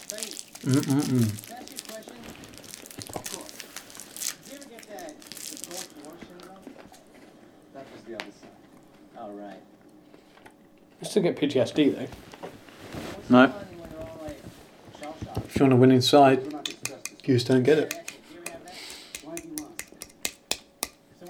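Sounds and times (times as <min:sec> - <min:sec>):
chocolate wrapper crinkling and rustling while eating: 0:00.0 - 0:06.9
speech: 0:00.1 - 0:01.5, 0:11.1 - 0:12.3, 0:13.3 - 0:13.6, 0:15.6 - 0:16.6, 0:17.3 - 0:18.0.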